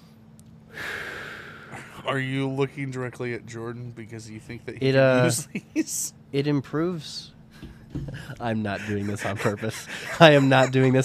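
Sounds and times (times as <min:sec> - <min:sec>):
single forceful breath: 0:00.7 - 0:02.0, 0:07.6 - 0:10.2
speech: 0:02.0 - 0:11.0
laughter: 0:05.1 - 0:06.1, 0:08.0 - 0:11.0.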